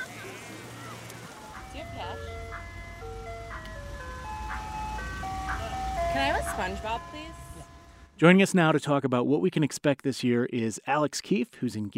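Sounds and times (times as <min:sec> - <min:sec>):
ice cream truck music-box jingle: 0:01.2 - 0:08.2
speech: 0:06.2 - 0:07.4, 0:08.2 - 0:11.9.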